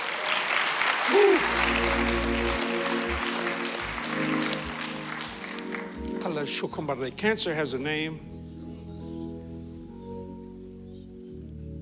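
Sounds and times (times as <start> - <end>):
applause from a large audience: 0.0 - 6.6
sustained organ or keyboard chords: 1.0 - 11.8
speech: 6.4 - 8.4.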